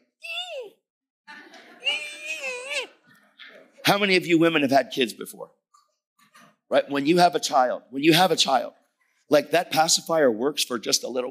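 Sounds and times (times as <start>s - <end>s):
voice imitating infant babbling and crying: 0.2s - 0.8s, 1.8s - 3.0s
speech: 3.9s - 5.7s, 6.7s - 11.2s.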